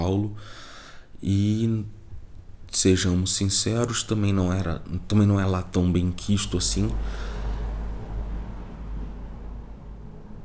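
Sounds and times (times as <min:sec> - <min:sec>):
speech: 0:00.1 - 0:00.6, 0:01.2 - 0:02.0, 0:02.7 - 0:07.3
steady low drone of traffic noise: 0:04.1 - 0:10.4
car passing by: 0:06.2 - 0:10.4.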